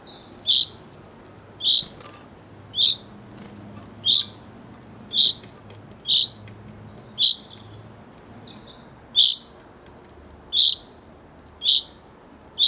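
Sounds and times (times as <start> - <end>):
Common chaffinch Fringilla coelebs calling: 0.0 - 0.8, 1.5 - 2.1, 2.7 - 3.1, 3.7 - 9.6, 10.5 - 10.9, 11.6 - 12.0.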